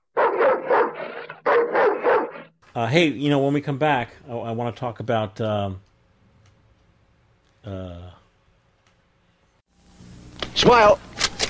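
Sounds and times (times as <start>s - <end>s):
dog barking: 0.0s - 2.5s
speech: 2.8s - 5.9s, 7.6s - 8.2s, 10.6s - 11.0s.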